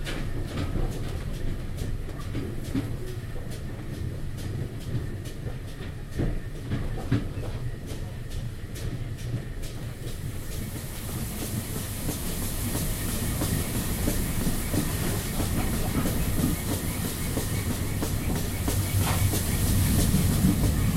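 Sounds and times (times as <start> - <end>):
steam train carriage rolling along the tracks: 0.0 - 20.9
broad hiss: 10.1 - 20.9.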